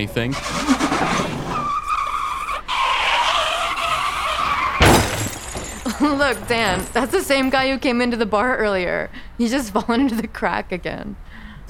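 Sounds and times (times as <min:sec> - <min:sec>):
speech: 0:00.0 - 0:00.8, 0:06.0 - 0:11.6
car driving on three tires skidding and squealing: 0:00.0 - 0:05.5.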